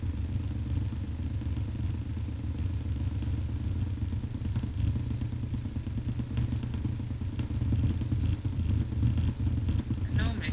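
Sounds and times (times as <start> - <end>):
cars pulling away past traffic lights with low engine rumble: 0.0 - 10.5
clatter in traffic noise: 0.0 - 10.5
faint voices: 10.0 - 10.5.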